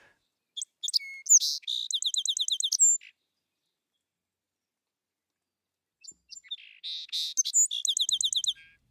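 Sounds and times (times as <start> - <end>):
song sparrow singing with trill: 0.5 - 4.0, 6.0 - 8.8.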